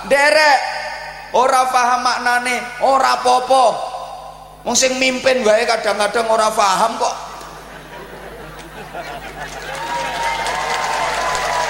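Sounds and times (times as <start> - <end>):
speech: 0.0 - 0.7, 1.3 - 3.9, 4.6 - 7.2
laughter: 7.4 - 11.5
crowd clapping at an Islamic communal prayer gathering: 8.6 - 11.6.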